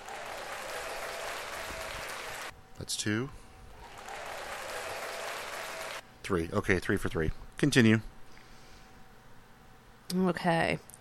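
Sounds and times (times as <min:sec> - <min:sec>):
loud steady crowd applause: 0:00.0 - 0:02.5, 0:03.8 - 0:06.0
speech: 0:02.8 - 0:03.4, 0:06.3 - 0:08.1, 0:10.1 - 0:11.0.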